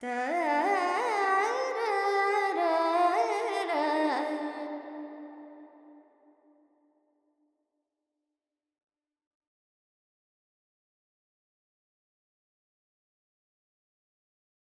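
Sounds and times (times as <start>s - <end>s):
Carnatic female alap vocals in raga Kapi with reverb: 0.0s - 5.7s.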